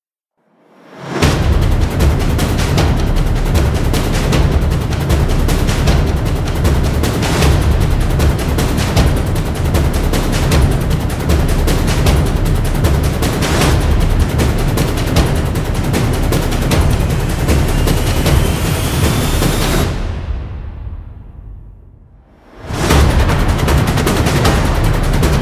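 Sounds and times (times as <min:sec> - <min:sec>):
intense trailer drum beats: 0:01.0 - 0:25.4.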